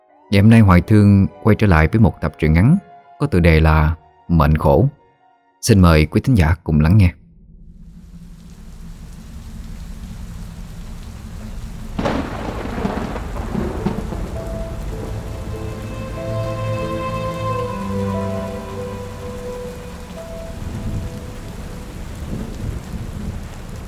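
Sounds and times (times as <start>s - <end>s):
speech: 0.3s - 5.0s, 5.6s - 7.2s
thunder: 7.2s - 23.8s
heavy rain pouring down at night over a busy street: 7.7s - 23.8s.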